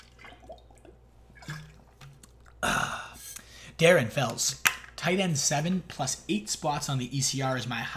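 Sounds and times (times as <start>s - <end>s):
person taking a sip of water: 0.0s - 3.5s
speech: 3.8s - 7.9s.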